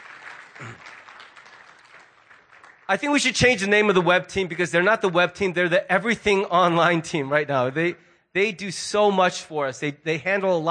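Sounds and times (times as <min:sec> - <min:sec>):
church audience applauding: 0:00.0 - 0:03.5
speech: 0:02.9 - 0:10.6.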